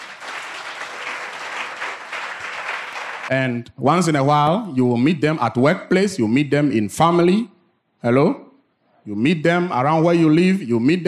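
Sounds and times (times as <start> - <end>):
church audience applauding: 0.0 - 3.3
speech: 3.3 - 11.0.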